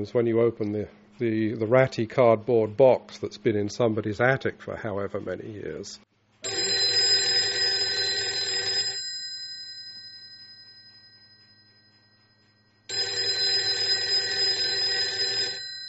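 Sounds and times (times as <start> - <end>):
speech: 0.0 - 6.6
vintage rotary mechanical telephone bell ringing: 6.4 - 15.8.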